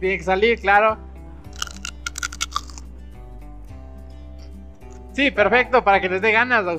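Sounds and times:
speech: 0:00.0 - 0:01.1, 0:05.2 - 0:06.7
crunchy bite of fried pork rind: 0:01.5 - 0:02.9.

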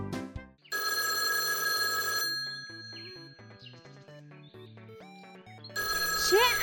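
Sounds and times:
telephone ringing: 0:00.7 - 0:03.7, 0:05.6 - 0:06.6.

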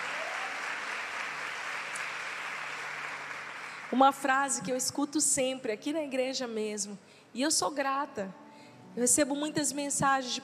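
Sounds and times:
church audience applauding: 0:00.0 - 0:04.0
speech: 0:03.9 - 0:08.4, 0:09.0 - 0:10.4.

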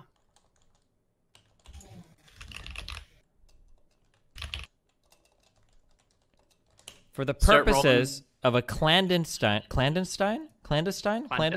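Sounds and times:
typing on a computer keyboard: 0:00.0 - 0:07.1
speech: 0:07.2 - 0:11.5.

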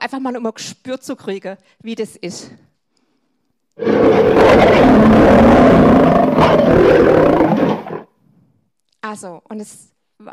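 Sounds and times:
speech: 0:00.0 - 0:02.7, 0:03.8 - 0:04.8, 0:09.1 - 0:10.3
recording of lion roaring: 0:03.8 - 0:08.1.

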